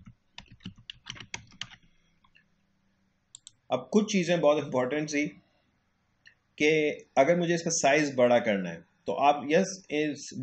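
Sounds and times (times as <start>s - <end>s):
typing on a computer keyboard: 0.0s - 2.0s
speech: 3.7s - 5.4s, 6.6s - 10.4s.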